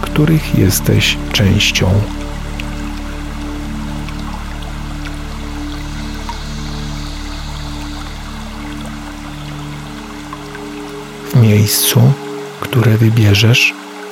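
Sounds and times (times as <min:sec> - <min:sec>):
low sustained droning tone: 0:00.0 - 0:13.2
small stream trickling over rock steps: 0:00.0 - 0:14.0
speech: 0:00.2 - 0:02.2, 0:11.4 - 0:13.8.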